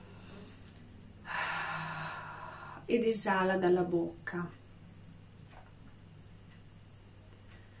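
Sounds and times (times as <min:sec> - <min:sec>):
long deep inhale through the nose: 0:01.3 - 0:02.8
speech: 0:02.9 - 0:04.6.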